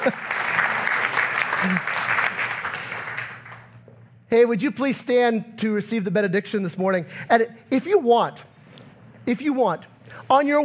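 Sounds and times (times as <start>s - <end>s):
speech: 0.0s - 0.3s, 1.6s - 2.2s, 4.3s - 8.5s, 9.3s - 10.6s
church congregation applauding: 0.0s - 3.8s.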